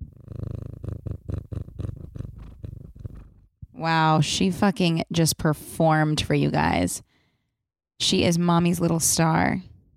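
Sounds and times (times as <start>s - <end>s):
female pet cat purring: 0.0s - 3.5s
speech: 3.8s - 7.1s, 8.0s - 9.7s.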